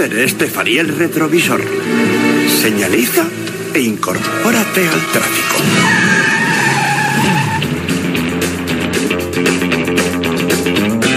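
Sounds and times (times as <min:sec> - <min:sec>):
speech: 0:00.0 - 0:06.3
car engine revving hard and speeding away: 0:00.0 - 0:11.1
car tires squealing and skidding: 0:00.9 - 0:08.5.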